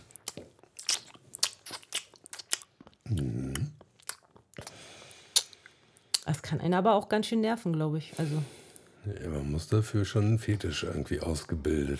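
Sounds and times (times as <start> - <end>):
crunchy chewing of food: 0.0 - 4.7
person swallowing food: 3.0 - 3.9
speech: 6.5 - 11.9.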